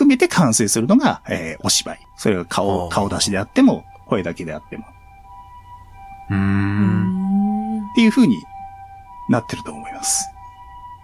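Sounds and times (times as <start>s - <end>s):
speech: 0.1s - 5.0s, 6.3s - 7.2s, 8.0s - 8.5s, 9.3s - 10.4s
faint steady two-tone ambulance siren: 0.5s - 11.0s.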